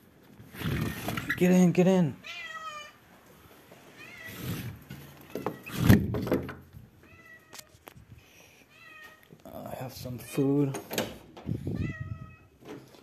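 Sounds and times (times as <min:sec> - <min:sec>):
speech: 0:01.4 - 0:02.2, 0:10.4 - 0:10.9
cat meowing in short rising calls: 0:02.2 - 0:03.0, 0:03.9 - 0:05.8, 0:07.0 - 0:07.7, 0:08.6 - 0:09.3, 0:11.6 - 0:12.6.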